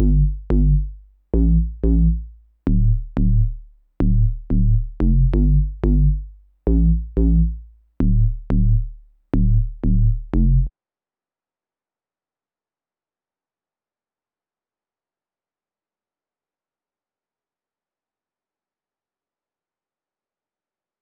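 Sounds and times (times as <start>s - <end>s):
D minor ARP2600 synth bass loop: 0.0s - 10.7s.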